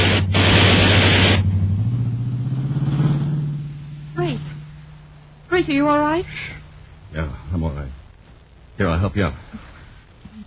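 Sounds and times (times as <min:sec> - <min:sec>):
car swerving dangerously close and roaring past: 0:00.0 - 0:05.1
speech: 0:05.6 - 0:08.0, 0:08.8 - 0:09.7.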